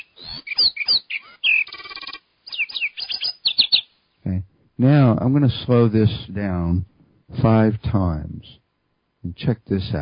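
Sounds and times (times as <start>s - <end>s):
lark sparrow singing a rapid varied song of chirps, trills and whistled notes: 0.0s - 3.9s
speech: 4.8s - 8.6s, 9.2s - 10.0s.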